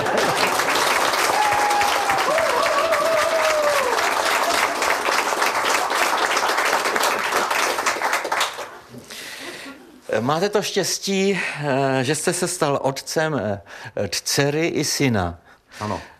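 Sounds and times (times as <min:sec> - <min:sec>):
large crowd applauding loudly: 0:00.0 - 0:08.9
speech: 0:10.2 - 0:16.1.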